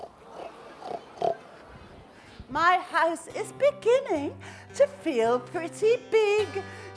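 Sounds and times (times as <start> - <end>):
pig grunting and oinking: 0.0 - 1.4
speech: 2.6 - 6.9.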